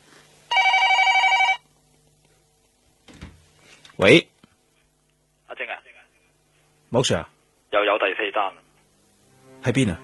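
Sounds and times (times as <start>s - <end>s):
telephone bell ringing: 0.5s - 1.6s
speech: 4.0s - 4.3s, 7.0s - 7.4s, 8.0s - 8.7s, 9.6s - 10.0s.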